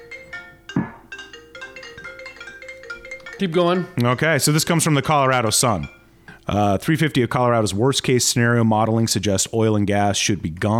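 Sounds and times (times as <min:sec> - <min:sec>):
phone ringtone playing a bright repeating electronic melody: 0:00.0 - 0:06.2
brief thump: 0:00.8 - 0:01.1
speech: 0:03.4 - 0:10.7.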